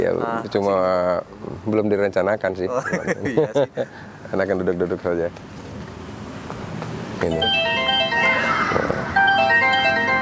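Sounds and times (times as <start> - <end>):
speech: 0.0 - 5.6, 7.2 - 7.7
laughter: 2.7 - 3.9
mobile phone ringtone with looping electronic melody: 7.3 - 10.1.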